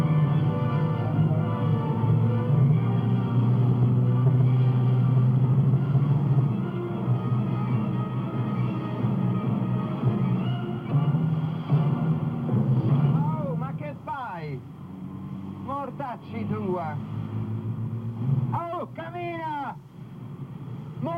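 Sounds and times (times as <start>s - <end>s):
engine rumble of congested street traffic: 0.0s - 21.1s
vehicles idling and passing: 0.0s - 21.1s.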